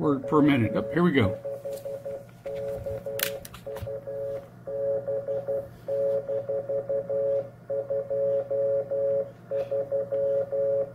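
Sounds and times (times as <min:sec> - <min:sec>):
speech: 0:00.0 - 0:01.9, 0:06.4 - 0:10.9
Morse code station identification tone on amateur radio: 0:00.0 - 0:10.9
low constant hum: 0:00.0 - 0:10.9.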